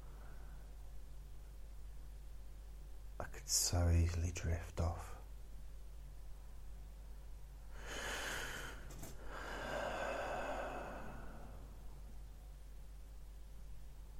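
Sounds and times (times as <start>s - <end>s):
speech: 3.2s - 5.2s
slow airy mouth breaths: 7.8s - 11.7s.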